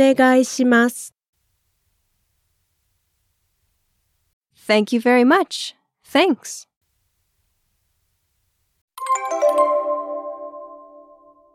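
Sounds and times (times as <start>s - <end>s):
speech: 0.0s - 1.2s, 4.7s - 6.7s
short electronic phone ringtone: 9.0s - 11.5s.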